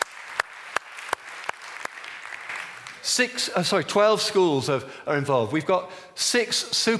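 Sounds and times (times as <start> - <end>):
audience applauding: 0.0 - 3.1
loud sharp claps: 0.0 - 3.2
speech: 3.0 - 6.9.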